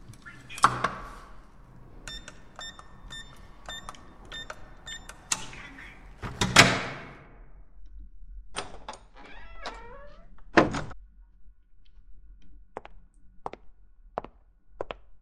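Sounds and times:
front door of a home swinging open with a rustling clunk: 0.1 - 7.2, 8.6 - 11.0
short electronic beeps from a keypad lock: 2.1 - 6.1.

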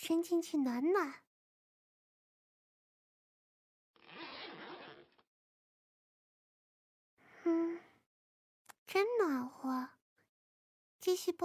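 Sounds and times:
speech: 0.0 - 1.3, 11.0 - 11.4
trouser zipper being pulled down: 4.0 - 5.3
breathy voiced sound: 7.2 - 8.1.

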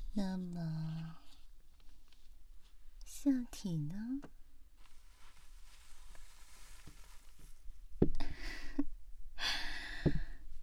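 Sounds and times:
speech: 0.2 - 1.2, 3.2 - 4.4
person panting like a dog: 9.4 - 10.4.

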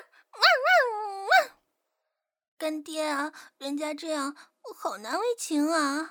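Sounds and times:
human voice imitating a dog barking: 0.0 - 1.6
speech: 2.6 - 6.1.

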